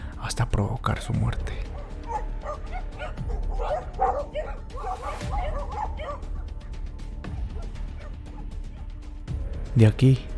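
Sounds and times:
speech: 0.3s - 1.7s, 9.8s - 10.3s
several fierce dogs barking aggressively: 1.7s - 8.9s.

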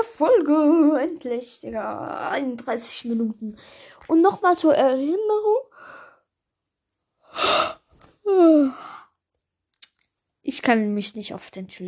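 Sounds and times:
speech: 0.0s - 6.0s, 7.3s - 9.0s, 10.5s - 11.8s
person yawning: 7.3s - 9.1s.

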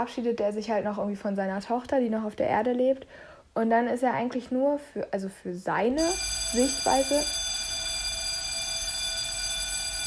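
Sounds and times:
speech: 0.0s - 7.4s
electric school bell ringing for end of lesson: 6.0s - 10.0s.

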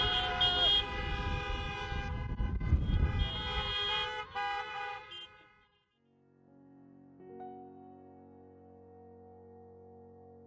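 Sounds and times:
several car horns honking: 0.0s - 5.8s.

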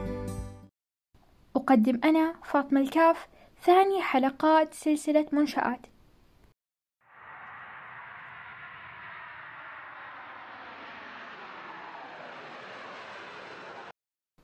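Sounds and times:
speech: 1.7s - 5.9s
airplane engine roaring as the aircraft approaches to land: 7.2s - 13.9s.

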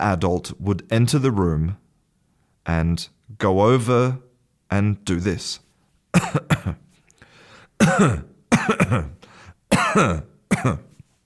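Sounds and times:
speech: 0.0s - 1.8s, 2.6s - 6.8s, 7.8s - 9.2s, 10.0s - 10.9s
adult coughing: 6.1s - 6.9s, 7.8s - 11.0s.

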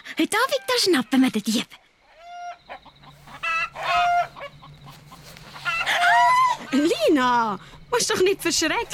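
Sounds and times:
speech: 0.2s - 1.8s, 6.7s - 8.9s
chicken clucking and squawking: 2.0s - 6.9s.

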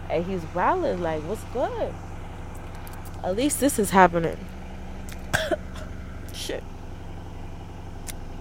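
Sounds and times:
steady low hum: 0.0s - 8.4s
speech: 0.1s - 2.1s, 3.2s - 4.6s, 6.4s - 6.7s
thirsty person coughing raspily: 5.3s - 5.9s.

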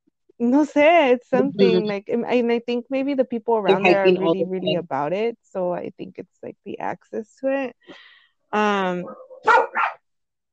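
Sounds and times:
speech: 0.4s - 9.9s
dog howling bark and short sharp barks: 9.1s - 10.0s.

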